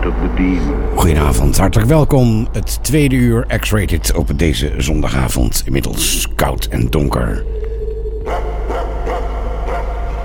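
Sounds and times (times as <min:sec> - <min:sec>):
constant low hum: 0:00.0 - 0:10.2
speech: 0:00.1 - 0:07.6
dog barking: 0:08.2 - 0:10.2.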